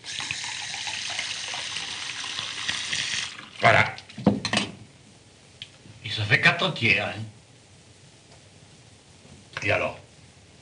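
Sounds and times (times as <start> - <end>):
water poured into a large glass: 0.0 - 3.7
speech: 3.6 - 3.9, 6.6 - 7.4, 9.6 - 10.0.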